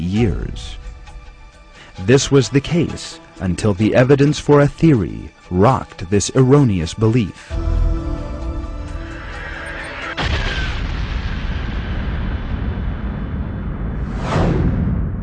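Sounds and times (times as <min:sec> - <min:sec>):
speech: 0:00.1 - 0:00.8, 0:02.0 - 0:07.8
rising-and-falling whoosh: 0:08.9 - 0:15.2
loud explosion with long roaring rumble: 0:09.8 - 0:15.2.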